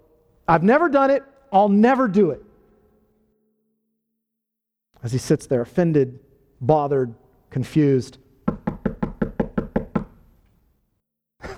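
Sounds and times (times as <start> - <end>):
speech: 0.5 - 2.5, 5.0 - 8.2
firm knocks on a wooden door: 8.5 - 10.2.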